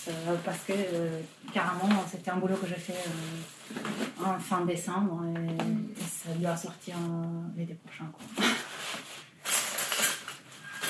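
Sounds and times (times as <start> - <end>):
speech: 0.0 - 8.7
metal cutlery jangling and clinking in a bag: 8.4 - 10.8.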